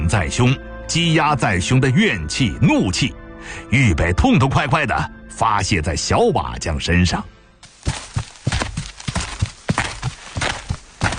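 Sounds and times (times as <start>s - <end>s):
speech: 0.1s - 8.0s
footsteps at walking pace: 7.6s - 11.1s.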